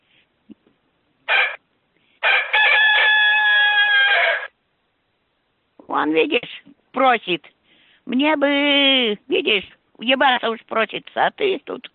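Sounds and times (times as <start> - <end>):
rooster crowing in a house: 1.3 - 1.6, 2.2 - 4.6
speech: 6.0 - 11.9.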